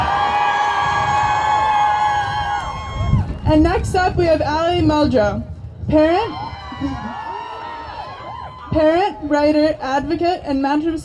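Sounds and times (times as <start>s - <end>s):
crowd whoops: 0.0s - 3.4s, 6.3s - 8.8s
audience applauding and cheering at a public school-board candidate event: 0.0s - 3.6s, 6.3s - 8.7s
speech: 3.5s - 7.2s, 8.8s - 11.0s.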